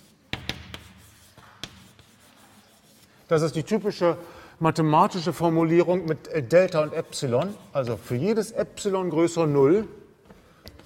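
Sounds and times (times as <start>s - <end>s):
handwriting scratching while a mathematical formula is written out: 0.0s - 3.2s
speech: 3.3s - 10.0s.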